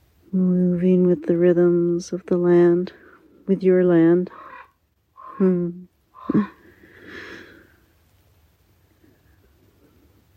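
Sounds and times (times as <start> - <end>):
speech: 0.3 - 4.4, 5.4 - 7.2
raven giving deep hoarse croaks and a rasping call: 4.2 - 7.4.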